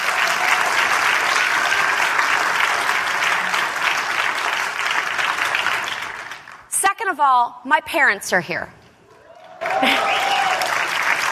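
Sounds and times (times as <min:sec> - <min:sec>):
large audience applause: 0:00.0 - 0:06.7, 0:09.1 - 0:11.2
speech: 0:07.1 - 0:08.8.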